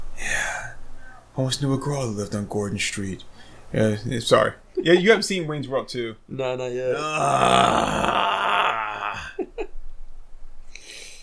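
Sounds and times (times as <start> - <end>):
exhale: 0.3 - 1.3, 3.3 - 3.7, 10.7 - 11.2
speech: 1.4 - 8.2
drawn-out exaggerated yawn: 6.9 - 9.4
short breathy grunts: 7.0 - 9.4.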